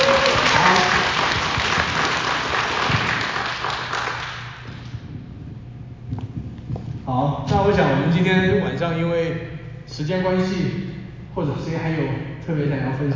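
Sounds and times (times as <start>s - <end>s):
room full of people applauding: 0.0s - 4.7s
speech: 7.7s - 10.8s, 11.4s - 13.1s.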